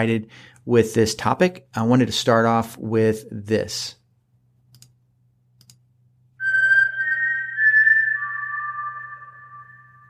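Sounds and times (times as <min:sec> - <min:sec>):
speech: 0:00.0 - 0:04.0
whistled four-note tune: 0:06.4 - 0:10.0.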